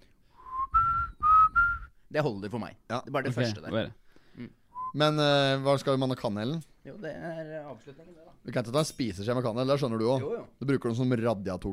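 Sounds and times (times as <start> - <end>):
person whistling a song melody: 0.3 - 2.0, 4.7 - 5.0
speech: 2.1 - 11.7.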